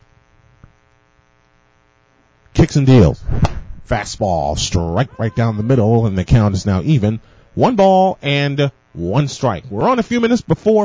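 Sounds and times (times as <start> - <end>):
speech: 2.6 - 10.8
steady electrical hum from a loudspeaker: 3.9 - 10.8.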